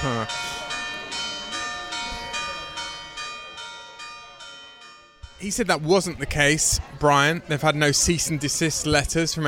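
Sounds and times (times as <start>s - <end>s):
church bells tolling: 0.0s - 6.6s
speech: 0.2s - 0.6s, 5.4s - 9.4s.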